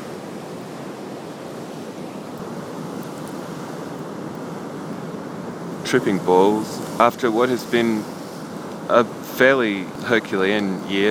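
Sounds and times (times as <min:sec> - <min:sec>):
ocean waves roaring at the beach: 0:00.0 - 0:11.0
wind rumble: 0:00.0 - 0:11.0
speech: 0:05.9 - 0:08.2, 0:08.9 - 0:11.0.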